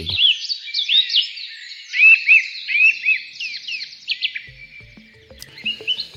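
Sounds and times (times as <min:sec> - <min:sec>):
birdsong: 0:00.0 - 0:06.1.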